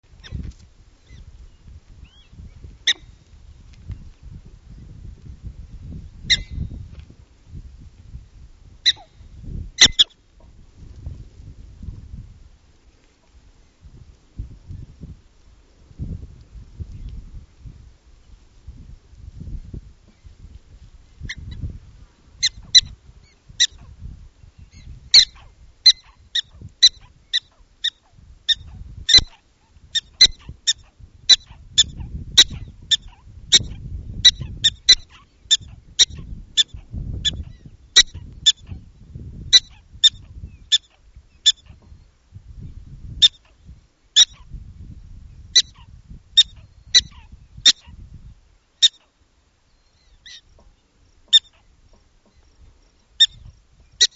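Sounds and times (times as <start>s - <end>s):
prairie dog calling: 2.0s - 3.2s, 6.3s - 6.7s, 8.8s - 9.2s, 9.8s - 10.2s, 22.4s - 24.0s, 24.7s - 42.0s, 43.1s - 44.6s, 45.4s - 48.1s, 48.8s - 54.1s.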